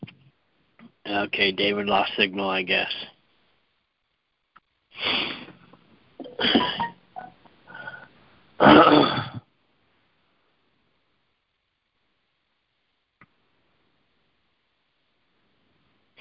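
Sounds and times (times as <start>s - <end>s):
speech: 1.1s - 3.1s
throat clearing from someone with an allergy: 8.6s - 9.5s.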